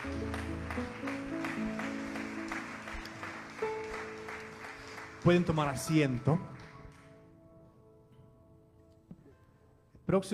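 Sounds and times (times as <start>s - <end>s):
church audience at a morning service applauding: 0.0s - 7.2s
sustained keyboard chords: 0.0s - 8.5s
speech: 5.2s - 6.5s, 10.1s - 10.3s.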